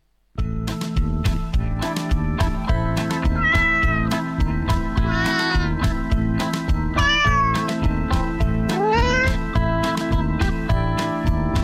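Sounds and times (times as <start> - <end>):
loud musical backing with a regular beat: 0.4 - 11.6
cats meowing and yowling in a song about cats: 3.3 - 4.2, 5.0 - 5.9, 6.9 - 7.8, 8.7 - 9.6.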